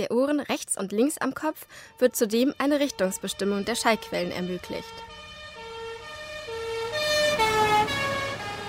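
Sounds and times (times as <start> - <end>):
speech: 0.0 - 5.3
road traffic rumble: 1.4 - 8.6
emergency vehicle siren wailing in rising and falling tones: 2.0 - 8.6.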